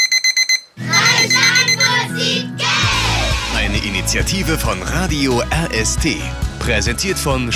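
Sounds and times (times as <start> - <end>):
alarm clock ringing: 0.0 - 2.0
steady music: 0.8 - 7.5
speech: 4.1 - 7.5.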